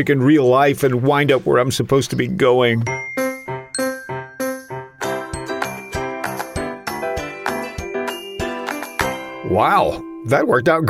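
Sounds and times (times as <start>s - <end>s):
speech: 0.0s - 3.2s, 9.5s - 10.8s
cell phone ringtone with bright chiming melody: 2.9s - 10.2s.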